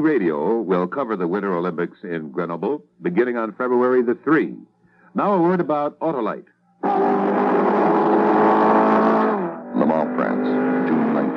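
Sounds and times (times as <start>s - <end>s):
speech: 0.0s - 7.5s, 10.1s - 11.3s
Ford Mark IV race car engine roaring at high revs at Le Mans, France: 6.8s - 11.3s.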